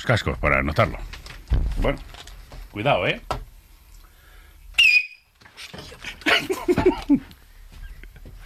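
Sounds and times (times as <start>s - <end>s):
speech: 0.0s - 2.2s, 2.8s - 3.4s
very loud shrill human whistle: 4.8s - 5.3s
laughter: 5.8s - 7.3s.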